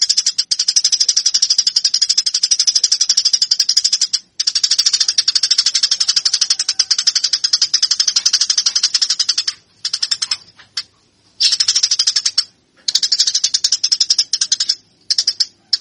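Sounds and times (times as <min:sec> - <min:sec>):
Eurasian tree sparrow chattering fighting call: 0:00.0 - 0:15.7.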